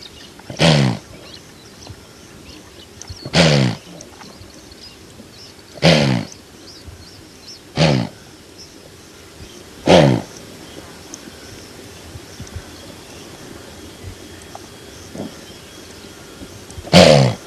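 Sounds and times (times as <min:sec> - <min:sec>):
quiet steady background hiss: 0:00.0 - 0:17.4
Blue wildebeest giving harsh pulsed grunting calls: 0:00.4 - 0:01.4, 0:03.2 - 0:04.2, 0:05.7 - 0:06.4, 0:07.7 - 0:08.4, 0:09.8 - 0:10.4, 0:14.7 - 0:17.4.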